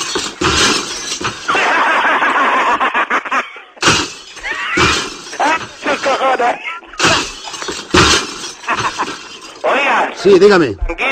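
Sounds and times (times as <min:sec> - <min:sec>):
shattering tinkling glass debris: 0:00.0 - 0:01.8, 0:03.8 - 0:09.8
glass panes smashing: 0:00.0 - 0:02.0, 0:03.8 - 0:09.8
laughter: 0:01.4 - 0:07.0, 0:08.5 - 0:09.8
speech: 0:10.2 - 0:11.0.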